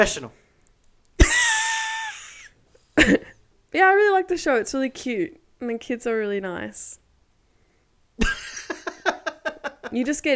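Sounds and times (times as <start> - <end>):
speech: 0.0 - 0.4, 3.0 - 7.0, 9.9 - 10.3
forceful cough trailing into a raspy rasp: 1.2 - 1.8.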